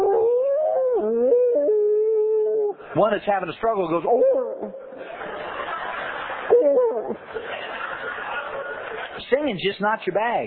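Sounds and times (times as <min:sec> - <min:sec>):
person imitating a bluetick hound dog howl: 0:00.0 - 0:02.8, 0:04.1 - 0:05.0, 0:06.5 - 0:07.2
speech: 0:03.0 - 0:04.8, 0:09.3 - 0:10.4
laughter: 0:04.5 - 0:09.2.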